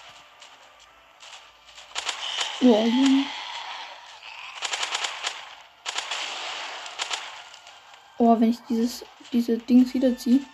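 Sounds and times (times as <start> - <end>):
sniper rifle gunfire in a video game: 1.2 - 3.0, 4.5 - 7.8
speech: 2.6 - 3.4, 8.3 - 10.5.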